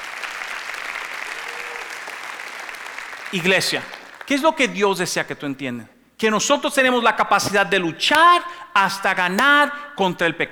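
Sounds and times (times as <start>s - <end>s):
audience applauding: 0.0s - 4.8s
speech: 3.3s - 10.5s.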